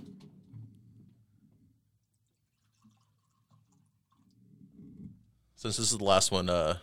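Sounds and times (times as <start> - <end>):
liquor pouring into a glass: 2.1 - 4.5
speech: 5.6 - 6.8.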